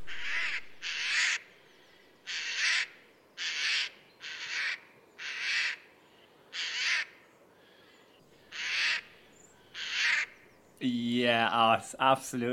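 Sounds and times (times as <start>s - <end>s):
Eurasian jay harsh shrieking calls in woodland: 0.0s - 5.8s, 6.5s - 10.6s
speech: 10.8s - 12.5s.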